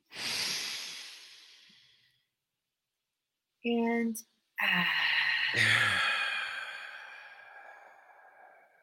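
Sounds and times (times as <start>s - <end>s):
deep breath in: 0.0s - 2.2s, 4.6s - 8.8s
speech: 3.6s - 6.1s.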